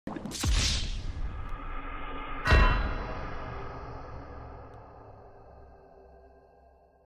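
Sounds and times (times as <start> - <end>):
death sound effect: 0.1 - 5.2.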